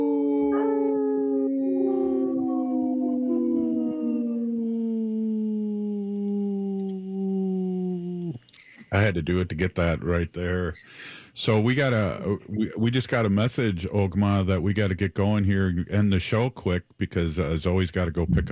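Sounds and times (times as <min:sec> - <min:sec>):
person imitating a wolf howl: 0:00.0 - 0:08.4
speech: 0:08.9 - 0:18.5.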